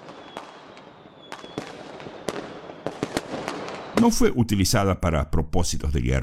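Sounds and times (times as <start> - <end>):
fireworks crackling and popping: 0.0 - 4.3
speech: 4.0 - 6.2.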